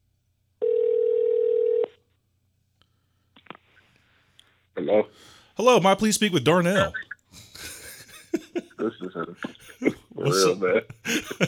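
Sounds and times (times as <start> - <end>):
telephone ringback tone: 0.6 - 1.9
speech: 4.8 - 7.4, 9.4 - 11.4
laughter: 6.8 - 11.4.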